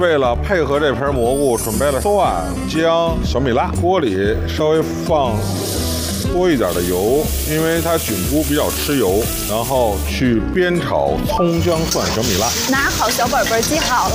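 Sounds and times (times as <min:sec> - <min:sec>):
people talking: 0:00.0 - 0:05.5, 0:06.3 - 0:14.1
scallion, ginger, garlic and chili peppers sizzling in hot oil: 0:05.2 - 0:10.2, 0:11.5 - 0:14.1.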